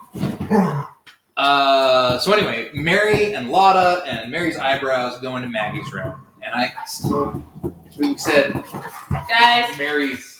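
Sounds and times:
speech: 0:00.5 - 0:10.3
dog whimpering: 0:05.4 - 0:09.3.

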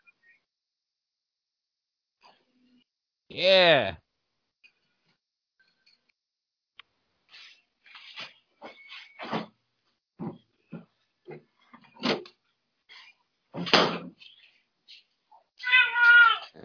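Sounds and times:
speech: 0:03.3 - 0:04.0
cat meowing with chirping meows and trills: 0:15.6 - 0:16.5.

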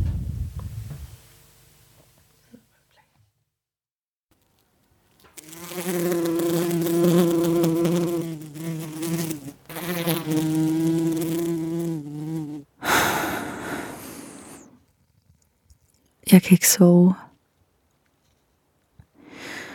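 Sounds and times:
quiet low rumbling: 0:00.0 - 0:02.2
bee buzzing heard through speakers: 0:05.3 - 0:12.7
short breathy rush: 0:12.8 - 0:14.8
speech: 0:16.3 - 0:17.2.

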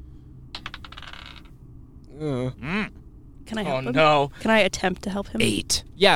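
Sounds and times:
dice tumbling across a hard tabletop: 0:00.6 - 0:01.5
speech: 0:02.2 - 0:06.1.

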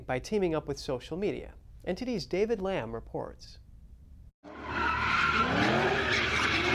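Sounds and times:
speech: 0:00.1 - 0:03.6
car engine roar: 0:04.4 - 0:06.7
car tires screeching during street sideshow: 0:04.5 - 0:06.7.

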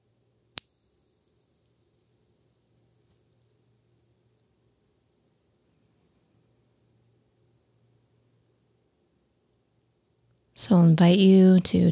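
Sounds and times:
bell struck once: 0:00.6 - 0:05.2
speech: 0:10.6 - 0:11.8.

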